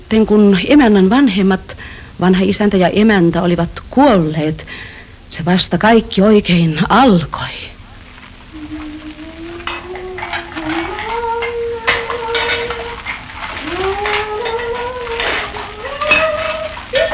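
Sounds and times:
speech: 0.1s - 7.7s
dishes and pans clinking while being washed: 8.2s - 17.1s.

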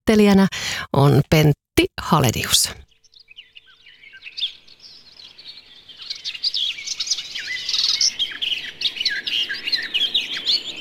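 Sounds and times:
speech: 0.0s - 2.9s
garden warbler song: 2.8s - 10.7s.

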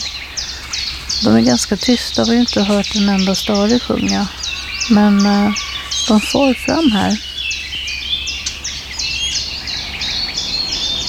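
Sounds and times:
faint steady background: 0.0s - 8.0s
blackcap warbler contact calls, smacking notes from birds foraging in a tree: 0.0s - 11.0s
speech: 1.2s - 7.3s.

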